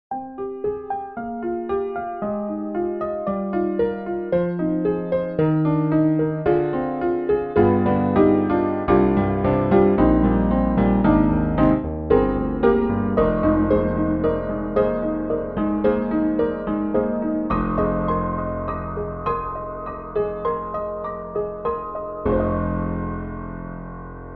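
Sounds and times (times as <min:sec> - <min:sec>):
broken antique piano playing: 0:00.1 - 0:24.3.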